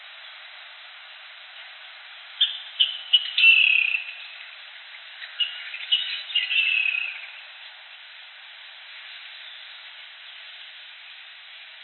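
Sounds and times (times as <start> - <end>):
rail calling with sharp notes and a descending rattle: 2.4 - 7.6.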